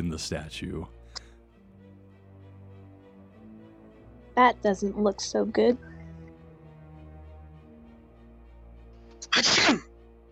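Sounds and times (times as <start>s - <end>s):
speech: 0.0s - 1.0s, 4.4s - 5.9s, 9.4s - 9.9s
person sneezing: 9.2s - 9.9s.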